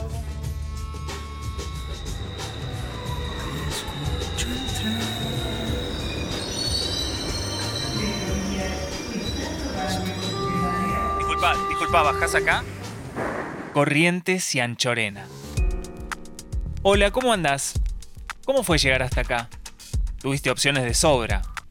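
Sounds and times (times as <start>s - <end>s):
high metallic squeals of a subway train: 0.6s - 13.1s
subway train wheels rumbling on rails at a station: 1.6s - 13.4s
speech: 11.8s - 12.8s, 13.8s - 15.4s, 16.8s - 17.8s, 18.5s - 19.6s, 20.2s - 21.5s.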